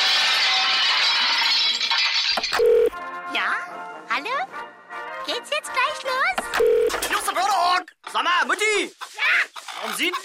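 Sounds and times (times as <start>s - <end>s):
crockery and glass crashing as canteen food is dispensed from a treadmill: 0.0s - 2.9s
speech: 3.4s - 10.2s.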